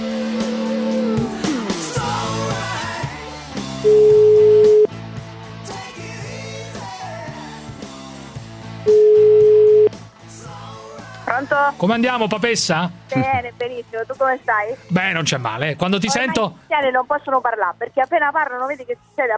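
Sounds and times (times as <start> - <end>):
music: 0.0 - 19.3
ringback tone of an outgoing telephone call: 3.8 - 4.9, 8.9 - 9.9
speech: 11.8 - 19.3.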